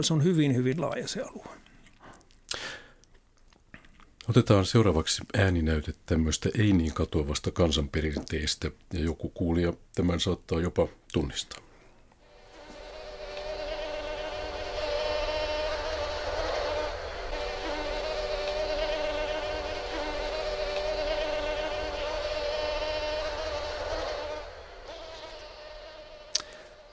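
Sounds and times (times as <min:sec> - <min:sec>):
speech: 0:00.0 - 0:01.6, 0:04.3 - 0:11.6
mosquitoes buzzing: 0:12.2 - 0:26.9.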